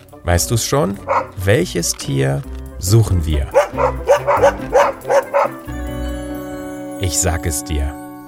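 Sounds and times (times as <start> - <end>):
speech: 0.1 - 5.6, 7.0 - 8.0
low musical tone: 0.4 - 8.2
dog barking: 1.0 - 1.4, 3.5 - 5.6.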